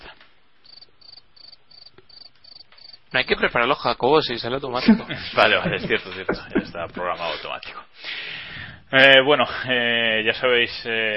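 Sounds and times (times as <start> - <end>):
crickets chirping: 0.6 - 3.8
speech: 3.1 - 7.9, 8.9 - 11.1
laughter: 4.7 - 7.5.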